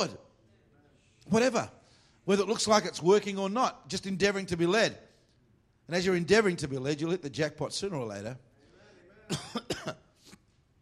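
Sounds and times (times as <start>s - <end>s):
speech: 0.0s - 0.2s, 1.3s - 5.1s, 5.9s - 8.5s, 9.3s - 10.0s
person coughing: 9.3s - 10.4s.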